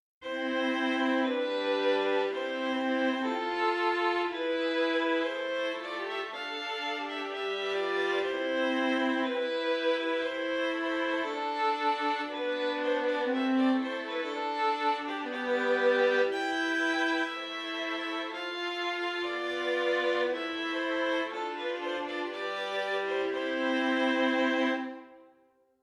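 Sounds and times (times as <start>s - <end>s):
violin: 0.2s - 25.5s.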